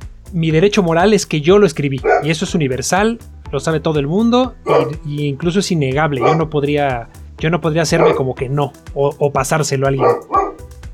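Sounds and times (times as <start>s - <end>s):
speech: 0.3s - 10.4s
dog barking: 2.0s - 2.4s, 4.6s - 5.0s, 6.0s - 6.6s, 7.9s - 8.4s, 9.9s - 10.7s.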